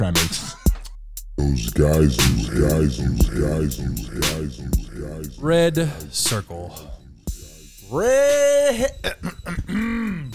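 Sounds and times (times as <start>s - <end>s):
speech: 0.0s - 0.5s, 1.4s - 7.0s, 7.9s - 10.3s
person coughing and throat clearing with soybeans stuck in the throat: 8.9s - 10.3s.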